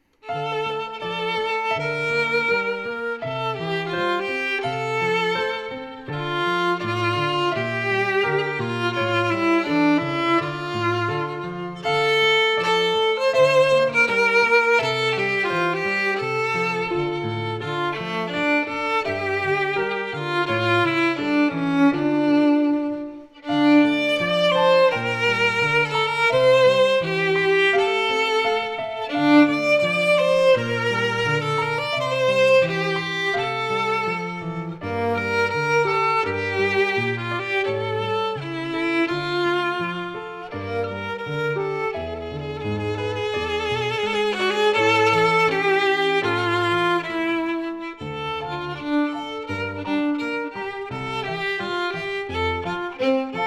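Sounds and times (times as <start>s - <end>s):
piano: 0.0s - 53.4s
violin: 0.0s - 53.4s.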